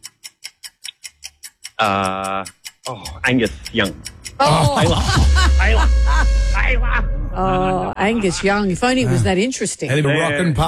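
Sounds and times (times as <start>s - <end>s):
quiz countdown clock ticking: 0.0s - 10.6s
speech: 1.8s - 10.6s
laughter: 4.4s - 10.6s
buzzer blaring: 4.8s - 7.4s.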